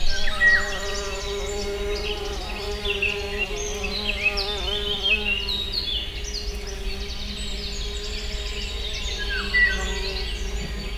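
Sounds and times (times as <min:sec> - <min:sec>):
wasp wings buzzing at a water house: 0:00.0 - 0:10.6.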